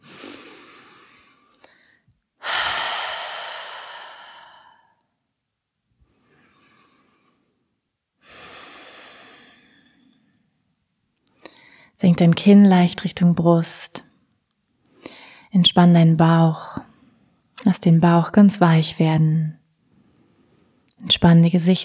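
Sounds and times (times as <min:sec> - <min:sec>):
deep breaths in and out through an open mouth during a calming exercise: 0:00.0 - 0:05.0, 0:08.2 - 0:10.2, 0:15.0 - 0:15.5
speech: 0:12.0 - 0:14.0, 0:15.6 - 0:16.9, 0:17.6 - 0:19.6, 0:21.0 - 0:21.8.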